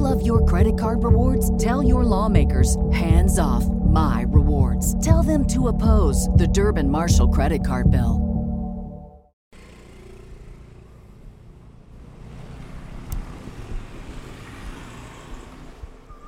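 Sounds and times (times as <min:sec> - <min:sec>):
speech: 0:00.3 - 0:08.3
morning rush-hour street traffic in Thailand: 0:09.6 - 0:16.2.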